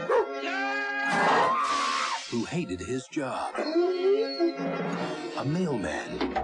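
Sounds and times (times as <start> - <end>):
bulldog barking in a long strained howling bark: 0.0 - 1.7, 3.5 - 4.6
speech: 2.3 - 6.4.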